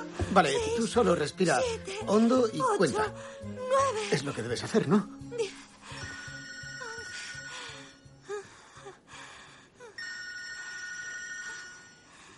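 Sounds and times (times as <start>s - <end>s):
speech: 0.4s - 5.5s
mobile phone electronic ringtone: 6.0s - 8.0s, 10.0s - 12.3s.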